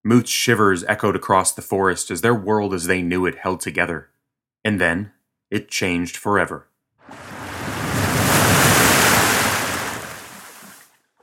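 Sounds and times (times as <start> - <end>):
speech: 0.0 - 7.2
sea waves crashing: 7.0 - 10.9.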